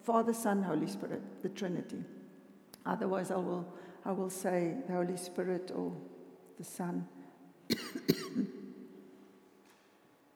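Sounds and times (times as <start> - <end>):
speech: 0.0 - 2.2, 2.8 - 8.6
person coughing: 7.7 - 8.6.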